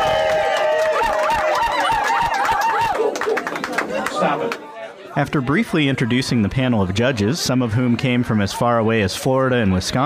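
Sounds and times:
audience at a bird call contest applauding: 0.0s - 4.7s
people cheering: 0.0s - 9.0s
speech: 5.2s - 10.0s.

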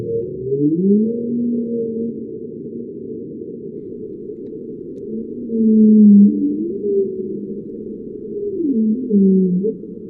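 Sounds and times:
whale calls recorded by acoustic monitoring: 0.0s - 2.3s, 5.1s - 10.0s
steady underwater rumble: 0.0s - 10.0s.

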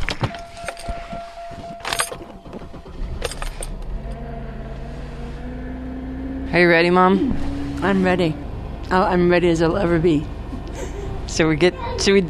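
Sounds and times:
keys jingling and clinking: 0.0s - 3.9s
car engine cranking and idling: 0.0s - 12.2s
speech: 6.5s - 10.4s, 11.3s - 12.2s.

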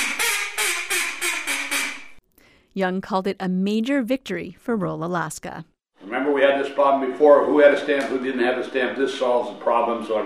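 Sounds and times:
hand-blown duck call quacking: 0.0s - 2.2s
speech: 2.8s - 10.2s.

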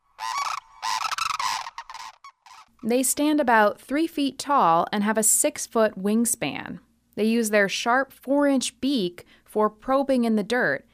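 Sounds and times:
sandhill crane giving loud rolling rattling bugles: 0.0s - 2.7s
speech: 2.8s - 10.9s.

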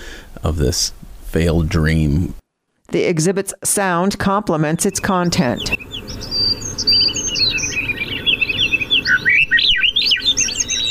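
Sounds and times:
steady low hiss: 0.0s - 10.9s
speech: 0.4s - 7.8s
songbirds chirping in a backyard: 4.2s - 10.9s.

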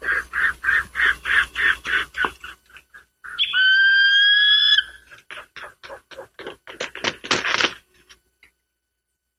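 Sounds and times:
eagle calling: 0.0s - 6.3s.

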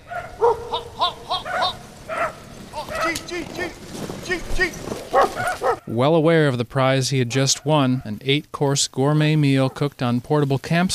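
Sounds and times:
several village dogs barking and yipping: 0.0s - 4.1s, 4.7s - 5.9s, 9.5s - 9.9s
busy outdoor background: 0.0s - 8.6s
speech: 5.9s - 10.9s.

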